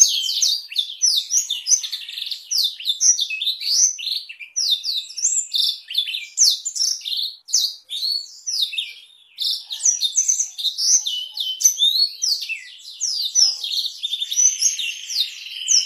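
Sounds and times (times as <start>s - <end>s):
black-throated canary singing a rapid high-pitched warble: 0.0s - 15.8s.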